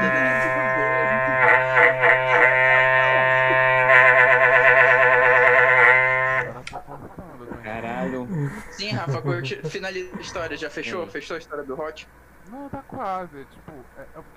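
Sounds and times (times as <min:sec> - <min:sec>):
cow mooing: 0:00.0 - 0:06.6, 0:08.0 - 0:11.1
laughter: 0:00.0 - 0:11.1
speech: 0:09.1 - 0:14.3.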